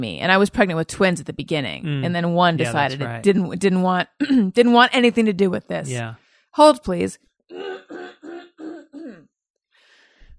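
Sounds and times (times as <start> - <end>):
speech: 0.0 - 8.3
throat clearing: 7.5 - 9.3.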